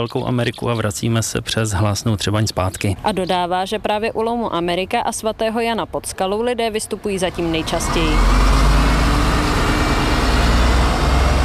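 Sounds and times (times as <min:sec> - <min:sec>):
speech: 0:00.0 - 0:08.6
circular-route bus engine running as the bus departs: 0:07.0 - 0:11.4.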